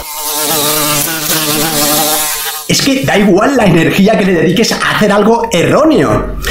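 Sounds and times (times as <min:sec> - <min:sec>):
fly buzzing against a window pane: 0:00.0 - 0:02.7
speech: 0:02.7 - 0:06.4.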